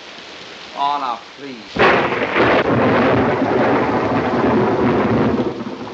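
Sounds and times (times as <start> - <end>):
heavy rain falling: 0.0 - 5.9
speech: 0.8 - 3.4
thunder rumbling during a heavy rainstorm: 1.7 - 5.9.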